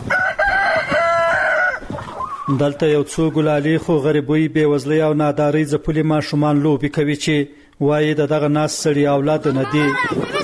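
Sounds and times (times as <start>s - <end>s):
rooster crowing in a yard beside a house: 0.0s - 2.4s
faint chicken clucks: 0.0s - 2.6s
chickens scratching in the dirt in a yard beside a house: 0.0s - 3.6s
speech: 2.5s - 10.4s.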